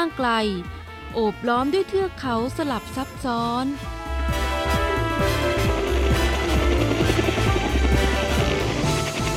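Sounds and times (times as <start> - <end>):
speech: 0.0 - 4.4
helicopter rotor and engine drone with whining turbine: 5.0 - 9.3.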